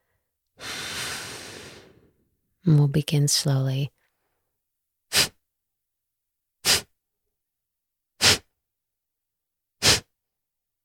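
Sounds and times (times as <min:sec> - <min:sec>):
long full exhale pushing out all the air: 0:00.6 - 0:02.1
speech: 0:02.6 - 0:04.0.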